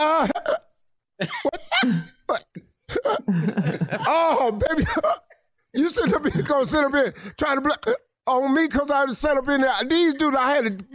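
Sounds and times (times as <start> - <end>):
man imitating hiccups with his voice: 0.1 - 0.8, 2.2 - 3.3
speech: 1.2 - 2.4, 3.3 - 5.2, 5.8 - 10.9
laughter: 3.2 - 5.1, 5.8 - 7.2.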